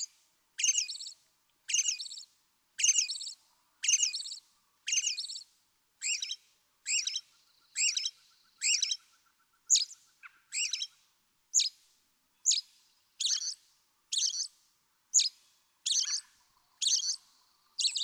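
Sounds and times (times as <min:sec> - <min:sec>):
American robin singing: 0:00.6 - 0:02.2, 0:02.8 - 0:05.4, 0:06.0 - 0:09.1, 0:09.7 - 0:11.8, 0:12.4 - 0:14.5, 0:15.1 - 0:18.0.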